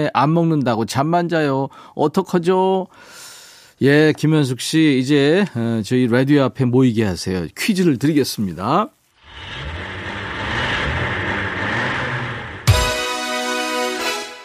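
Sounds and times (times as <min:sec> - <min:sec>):
speech: 0:00.0 - 0:03.2, 0:03.8 - 0:09.8
car engine starting and revving: 0:09.2 - 0:14.1.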